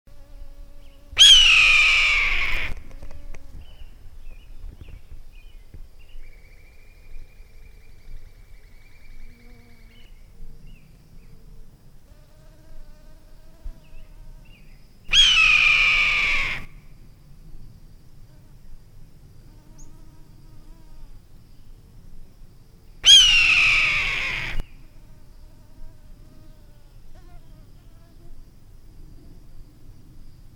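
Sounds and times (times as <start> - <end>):
red-tailed hawk calling: 1.2 - 2.8, 15.1 - 16.7, 23.0 - 24.7.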